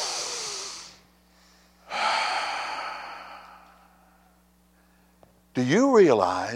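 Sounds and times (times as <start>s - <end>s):
crowd taking a deep breath together: 0.0s - 5.2s
speech: 5.6s - 6.5s.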